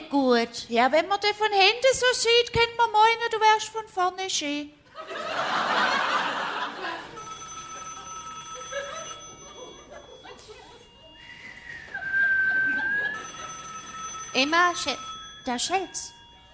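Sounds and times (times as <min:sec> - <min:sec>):
speech: 0:00.1 - 0:05.6, 0:14.4 - 0:16.2
burst of laughter: 0:04.9 - 0:14.0
telephone ringing with electronic tones: 0:05.2 - 0:11.2, 0:12.6 - 0:16.5
sustained whistle-like tone: 0:11.1 - 0:13.2.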